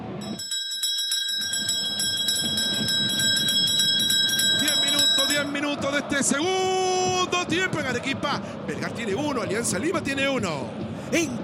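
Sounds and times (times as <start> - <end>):
bell ringing with rapid bright metallic strikes: 0.2 - 5.8
speech: 6.0 - 11.4.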